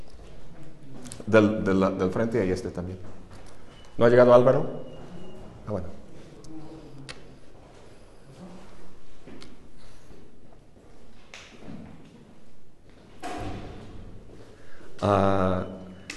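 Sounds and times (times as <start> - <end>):
speech: 1.2 - 3.2, 4.0 - 4.9, 5.7 - 6.0, 15.0 - 15.7
door pushed shut with a dull thud: 13.2 - 14.1.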